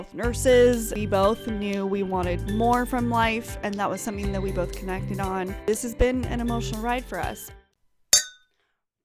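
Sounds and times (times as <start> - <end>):
speech: 0.0 - 7.6
drinking glasses clinking in a toast: 8.2 - 8.4.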